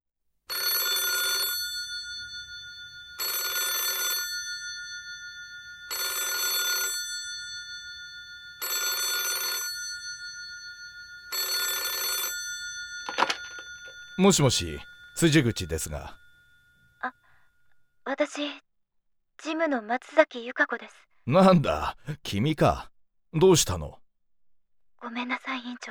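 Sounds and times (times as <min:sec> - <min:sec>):
telephone bell ringing: 0:00.5 - 0:17.5
telephone click: 0:13.1 - 0:13.7
speech: 0:14.2 - 0:16.2, 0:18.3 - 0:18.7, 0:19.4 - 0:24.0, 0:25.0 - 0:25.8.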